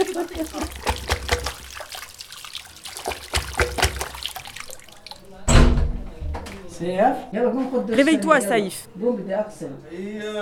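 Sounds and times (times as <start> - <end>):
tap water running and splashing while cleaning a bathroom: 0.0 - 5.3
speech: 0.1 - 0.9, 6.8 - 10.4.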